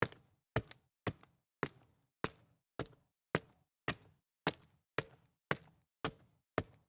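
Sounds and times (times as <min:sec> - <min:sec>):
dress shoes on concrete stairs: 0:00.0 - 0:06.8.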